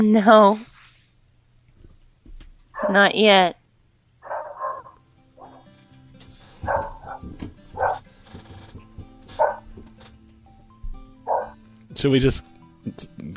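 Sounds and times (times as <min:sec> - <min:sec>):
speech: 0:00.0 - 0:00.7, 0:02.8 - 0:03.6, 0:12.0 - 0:13.3
dog barking: 0:02.8 - 0:03.1, 0:04.2 - 0:05.6, 0:06.6 - 0:08.0, 0:09.3 - 0:09.7, 0:11.3 - 0:11.6.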